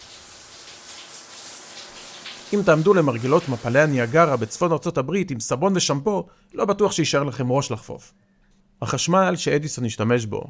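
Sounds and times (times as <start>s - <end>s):
shower water spraying: 0.0s - 4.8s
speech: 2.5s - 10.4s.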